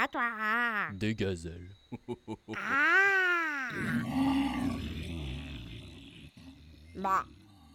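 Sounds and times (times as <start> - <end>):
speech: 0.0 - 4.6, 7.0 - 7.4
person imitating a tiger roar and growl: 2.6 - 7.7.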